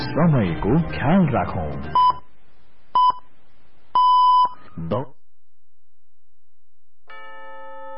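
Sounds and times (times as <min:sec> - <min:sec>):
speech: 0:00.2 - 0:02.0, 0:04.8 - 0:05.1
radio time signal beeps: 0:01.9 - 0:02.3.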